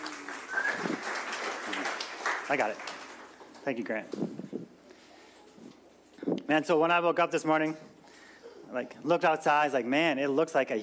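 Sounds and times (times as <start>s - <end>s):
crowd applauding in a large room: 0.0s - 3.6s
speech: 2.5s - 2.9s, 3.6s - 4.4s, 6.5s - 7.9s, 8.7s - 10.8s.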